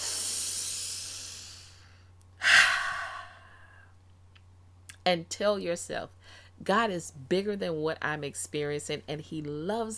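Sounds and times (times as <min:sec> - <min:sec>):
deep breathing: 0:00.0 - 0:03.9
speech: 0:05.0 - 0:09.9.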